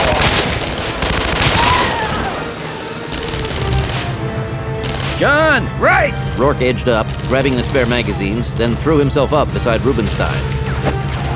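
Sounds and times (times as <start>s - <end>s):
heavy sustained gunfire in overlapping bursts: 0.0s - 11.3s
speech: 5.2s - 11.0s.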